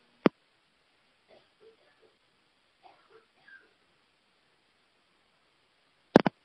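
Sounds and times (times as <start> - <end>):
faint breathy sounds: 1.2 - 4.8
coughing: 1.3 - 2.2, 2.8 - 3.8.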